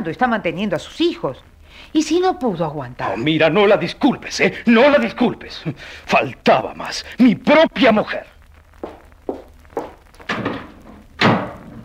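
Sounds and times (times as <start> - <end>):
speech: 0.0 - 9.0
quick footsteps: 8.7 - 11.8
door slamming shut with a loud heavy bang: 10.3 - 11.8.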